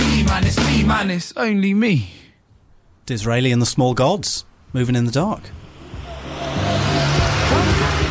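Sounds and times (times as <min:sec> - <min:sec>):
speech: 0:00.4 - 0:02.2, 0:03.1 - 0:05.6
car driving by: 0:05.3 - 0:08.0.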